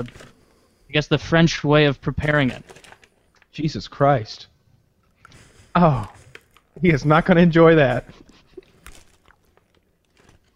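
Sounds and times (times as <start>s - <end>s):
speech: 0.0s - 0.3s, 0.9s - 2.8s, 3.6s - 4.5s, 5.8s - 6.2s, 6.8s - 8.2s
biting and chewing moldy food: 5.0s - 6.9s, 8.0s - 10.5s.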